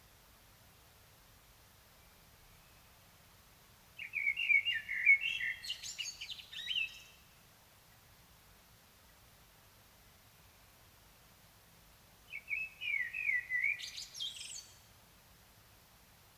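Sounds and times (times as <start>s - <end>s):
common blackbird Turdus merula singing: 4.0s - 7.2s, 12.3s - 14.8s.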